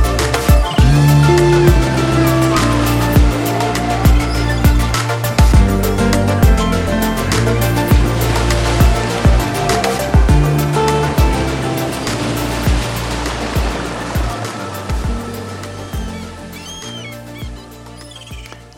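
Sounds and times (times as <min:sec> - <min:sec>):
waves rushing on a beach: 0:00.0 - 0:18.7
faint higher chirps: 0:15.8 - 0:18.6.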